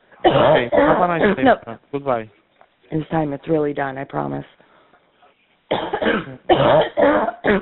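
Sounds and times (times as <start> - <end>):
harsh chesty coughing: 0.2 - 1.6, 5.7 - 7.6
speech: 0.2 - 4.6, 5.7 - 7.6.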